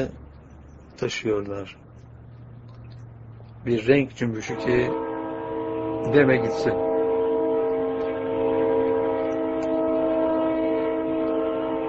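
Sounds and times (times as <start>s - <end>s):
speech: 0.0s - 0.2s, 1.0s - 1.8s, 3.6s - 5.1s, 6.0s - 6.9s
low rolling rumble of passing train: 0.0s - 11.8s
passing train horn multi-tone blast: 4.3s - 11.8s.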